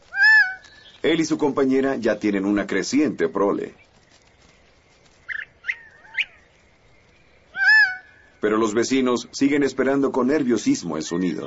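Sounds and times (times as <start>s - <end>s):
Gambel's quail calling: 0.0s - 1.1s, 5.2s - 6.5s, 7.4s - 8.5s
speech: 1.0s - 3.8s, 8.4s - 11.4s.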